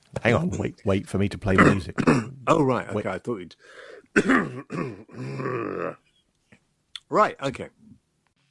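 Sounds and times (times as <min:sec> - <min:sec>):
speech: 0:00.2 - 0:06.0, 0:07.1 - 0:07.9
person clearing throat: 0:01.6 - 0:02.4, 0:04.1 - 0:06.0.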